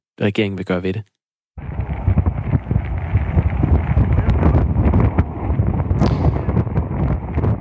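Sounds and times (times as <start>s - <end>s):
speech: 0.2s - 1.2s
fire tornado spreading a huge wildfire on Kangaroo Island Australia: 1.6s - 7.6s.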